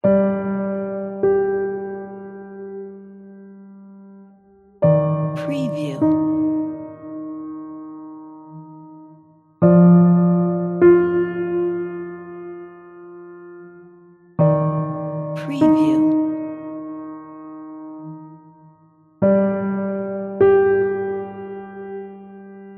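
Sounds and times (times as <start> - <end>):
sad dramatic funeral piano music: 0.0 - 22.7.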